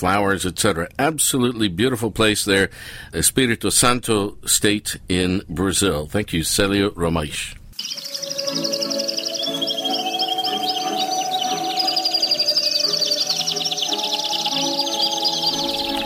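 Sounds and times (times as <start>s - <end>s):
speech: 0.0s - 8.7s
chorus of birds chirping and trilling: 7.8s - 16.0s
musical accompaniment with sustained tones: 7.8s - 16.0s.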